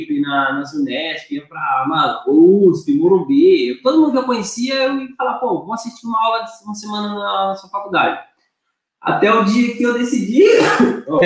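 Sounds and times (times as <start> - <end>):
speech: 0.0 - 8.3, 9.0 - 11.2
single loud sneeze: 10.4 - 11.1.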